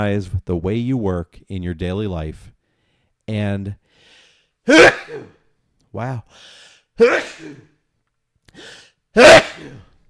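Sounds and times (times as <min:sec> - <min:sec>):
speech: 0:00.0 - 0:02.6, 0:03.3 - 0:05.4, 0:06.0 - 0:07.7, 0:08.6 - 0:09.9
person sneezing loudly: 0:04.7 - 0:05.4, 0:07.0 - 0:07.8, 0:08.5 - 0:10.0.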